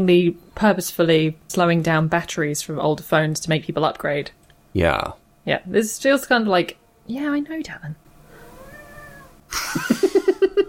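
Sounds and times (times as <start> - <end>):
speech: 0.0 - 8.0, 9.5 - 10.0
pet cat meowing: 8.4 - 9.4
laughter: 9.5 - 10.6.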